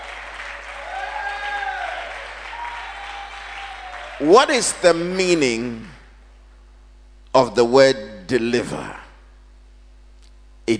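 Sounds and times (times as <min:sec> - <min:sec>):
faint cheering or voices: 0:00.0 - 0:04.4
church audience clapping during a sermon: 0:00.0 - 0:05.0
speech: 0:04.2 - 0:06.0, 0:07.4 - 0:09.0.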